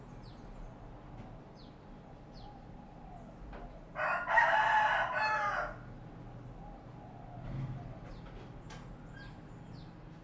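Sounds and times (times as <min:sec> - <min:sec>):
low background hum: 0:00.0 - 0:10.2
rooster crowing: 0:03.9 - 0:05.9.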